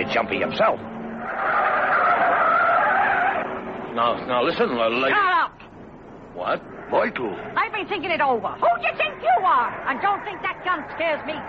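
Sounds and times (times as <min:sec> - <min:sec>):
speech: 0:00.1 - 0:01.0, 0:04.0 - 0:05.5, 0:06.4 - 0:11.4
car tires squealing as the car speeds around corners: 0:01.0 - 0:03.8, 0:08.7 - 0:11.4.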